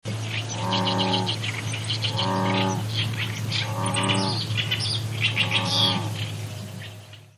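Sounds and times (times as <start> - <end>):
American bullfrog croaking: 0.5 - 6.3.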